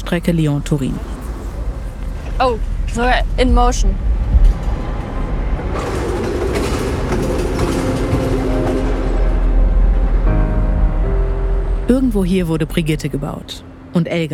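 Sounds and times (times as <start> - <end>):
tunnel boring machine for a railway tunnel running in a factory hall: 0.0 - 14.0
speech: 0.1 - 1.2, 2.4 - 4.1, 11.9 - 14.3
scattered metallic clatter: 4.3 - 10.1.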